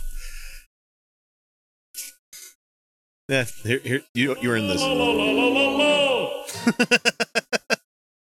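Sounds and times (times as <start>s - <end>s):
speech: 3.3s - 7.6s
laughter: 4.4s - 7.8s
loud explosive sneeze with voiced wind-up: 6.5s - 7.1s.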